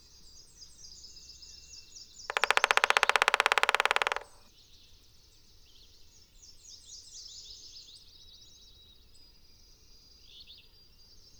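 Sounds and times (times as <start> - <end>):
high-pitched bird twitters: 2.3 - 4.4
Black-backed woodpecker drumming: 2.3 - 4.5.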